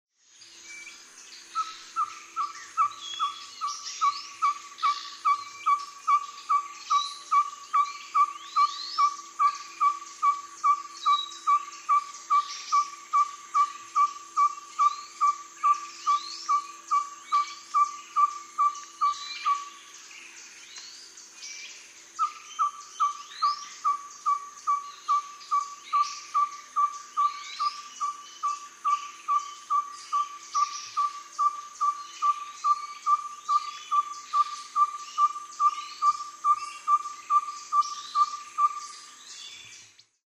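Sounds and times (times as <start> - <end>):
Ferruginous Pygmy Owl Glaucidium brasilianum calling: 1.6 - 19.7, 22.2 - 38.9.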